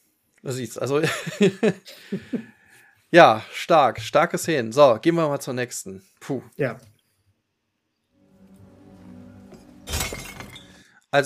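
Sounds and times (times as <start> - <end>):
speech: 0.4 - 6.9
laughter: 1.0 - 2.4
glass bottle thrown into a bottle bank shattering: 9.7 - 10.8.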